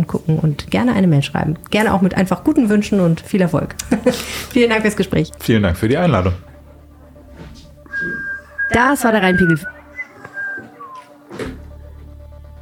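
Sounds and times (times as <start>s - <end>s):
speech: 0.0s - 6.5s, 8.7s - 9.8s
laughter: 3.7s - 4.6s
person whistling a short wavering melody without moving lips: 7.9s - 11.1s.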